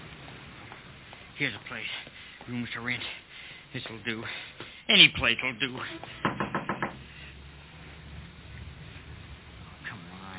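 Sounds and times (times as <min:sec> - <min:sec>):
faint hum: 0:00.0 - 0:10.3
speech: 0:01.4 - 0:06.3
firm knocks on the wooden door of a place with rooms to rent: 0:06.2 - 0:07.0.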